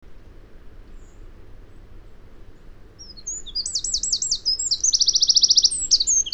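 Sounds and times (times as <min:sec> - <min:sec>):
faint low background noise: 0:00.0 - 0:06.3
Eurasian wren Troglodytes troglodytes singing: 0:03.0 - 0:06.3.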